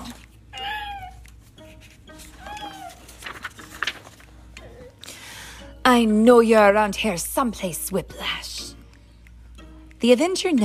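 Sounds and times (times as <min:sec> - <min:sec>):
boy imitating a cat with wavering meows: 0:00.6 - 0:01.2
speech: 0:06.0 - 0:08.4, 0:10.0 - 0:10.6.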